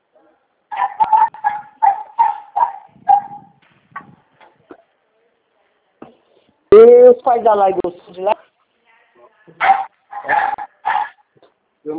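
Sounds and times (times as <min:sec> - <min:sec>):
dog barking: 0:00.7 - 0:03.6, 0:09.6 - 0:11.3
dog whimpering and yipping: 0:00.8 - 0:03.5
speech: 0:06.8 - 0:08.3.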